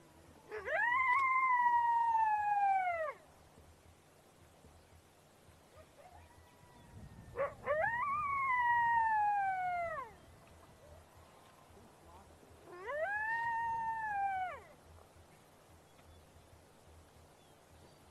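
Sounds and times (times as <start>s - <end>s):
single coyote howling: 0.5s - 3.2s, 7.3s - 10.2s, 12.6s - 14.8s.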